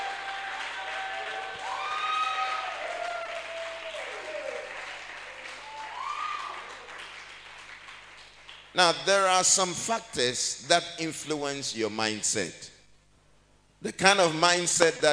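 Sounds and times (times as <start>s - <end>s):
audience clapping: 0.0s - 9.4s
speech: 8.8s - 12.7s, 13.8s - 15.1s.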